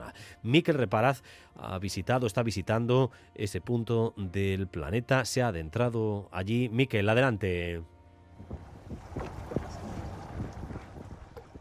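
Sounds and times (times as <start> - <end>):
speech: 0.4 - 8.6
small motorboat engine droning on open water in Disko Bay: 8.2 - 11.5
gusty wind buffeting the microphone: 8.4 - 11.5
water splashing: 8.4 - 11.5.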